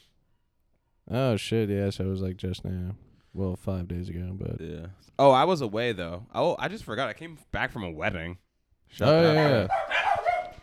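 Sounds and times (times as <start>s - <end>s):
speech: 1.1s - 10.0s
dog barking: 9.4s - 10.6s.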